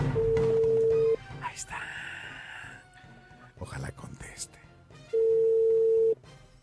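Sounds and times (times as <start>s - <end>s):
telephone ringback tone beeps during a call attempt: 0.2s - 1.1s, 5.1s - 6.1s.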